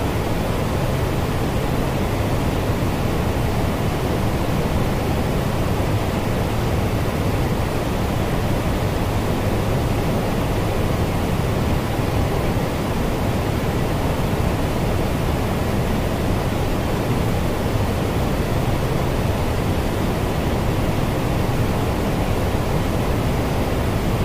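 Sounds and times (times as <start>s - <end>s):
baby white noise hiss: 0.0s - 24.2s.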